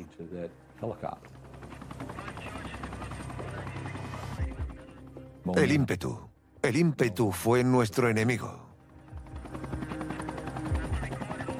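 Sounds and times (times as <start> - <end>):
speech: 0.1 - 1.8, 5.5 - 8.7
helicopter rotor blades chopping during a police raid operation: 0.8 - 5.8, 7.4 - 11.5.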